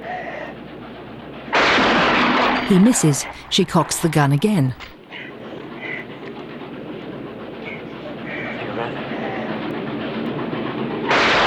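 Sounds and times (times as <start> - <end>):
steam train rolling along rails: 0.0 - 11.4
speech: 2.7 - 5.0.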